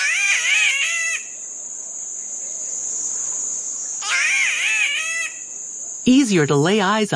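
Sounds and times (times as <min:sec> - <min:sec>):
spotted catbird giving harsh wavering cat-like wails: 0:00.0 - 0:01.4, 0:04.0 - 0:05.5
constant high buzz of insects: 0:00.0 - 0:07.1
speech: 0:06.1 - 0:07.1.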